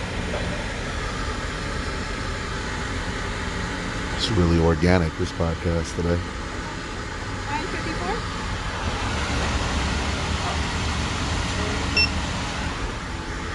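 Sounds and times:
traffic-like rumble: 0.0 - 13.5
speech: 4.2 - 6.4
short electronic scanner beep of a payment app scanned at a Starbucks counter: 11.9 - 12.2.

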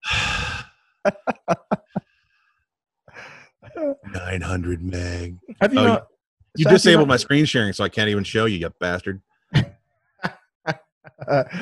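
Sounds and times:
person breathing heavily: 0.0 - 0.7, 3.1 - 4.3, 11.4 - 11.6
speech: 1.0 - 1.8, 4.1 - 9.3, 10.7 - 11.6
laughter: 1.1 - 2.0, 4.1 - 6.0, 6.6 - 9.7, 11.1 - 11.6.

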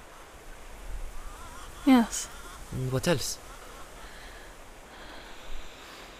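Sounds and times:
rushing water of the Ottawa River in the distance: 0.0 - 6.1
steady hiss of outdoor air: 0.0 - 6.1
speech: 1.8 - 3.4
soft breathing of a person outdoors near the Ottawa River: 4.0 - 6.1.

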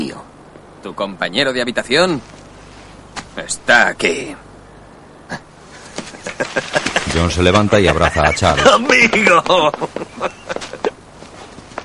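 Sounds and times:
speech: 0.1 - 2.4, 3.4 - 4.5, 6.6 - 10.4
laughter: 5.8 - 11.0
footsteps of people walking: 8.6 - 11.8.

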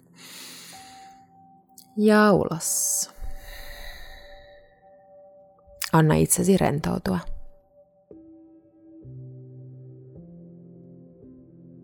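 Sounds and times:
deep breath in: 0.1 - 1.3, 3.2 - 4.9
speech: 2.0 - 3.2, 5.9 - 7.3.

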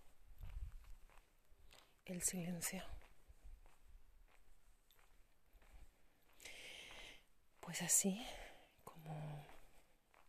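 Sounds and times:
soft footsteps walking at an unhurried pace: 0.0 - 10.2
speech: 2.1 - 3.0, 7.8 - 9.3.

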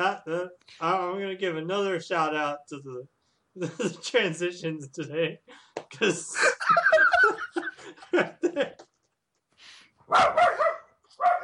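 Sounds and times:
speech: 0.0 - 8.9, 10.1 - 11.4
laughter: 5.9 - 8.9
pet dog barking: 10.1 - 11.4.

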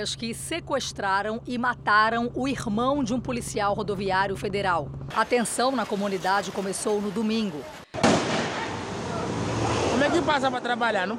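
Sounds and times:
speech: 0.0 - 7.8, 10.1 - 11.1
gunshots during a shootout: 8.0 - 8.8.

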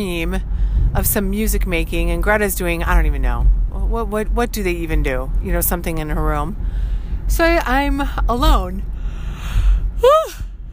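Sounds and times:
speech: 0.0 - 8.9, 10.0 - 10.4
person yawning: 10.0 - 10.4.

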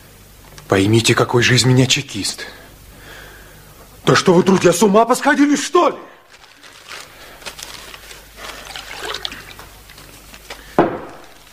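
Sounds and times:
speech: 0.7 - 2.6, 4.1 - 6.1
water poured into a glass: 8.5 - 10.0.

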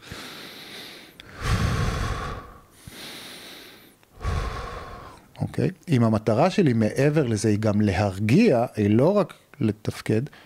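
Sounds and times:
rapid even breathing: 0.0 - 5.3
speech: 5.6 - 10.4.

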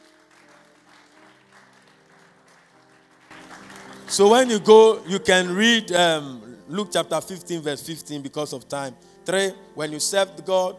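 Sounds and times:
audience clapping: 0.0 - 5.1
speech: 4.1 - 10.7.

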